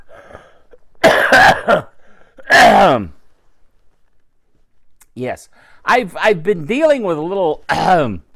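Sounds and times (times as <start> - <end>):
person coughing: 0.0 - 3.1, 7.7 - 8.2
speech: 1.3 - 1.9, 2.5 - 3.2, 5.2 - 8.3.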